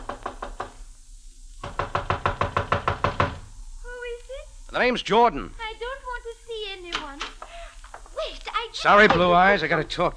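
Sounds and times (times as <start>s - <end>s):
knuckles knocking on wooden door of a houseboat on the Nile: 0.0s - 0.8s, 1.6s - 3.5s, 9.0s - 9.5s
speech: 4.8s - 5.6s, 8.8s - 10.1s.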